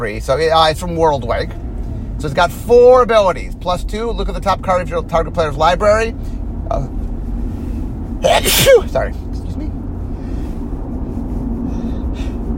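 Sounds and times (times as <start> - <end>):
speech: 0.0 - 1.6, 2.2 - 7.0, 8.2 - 9.2
steady low rumble: 0.0 - 12.5
person sneezing: 8.2 - 8.9.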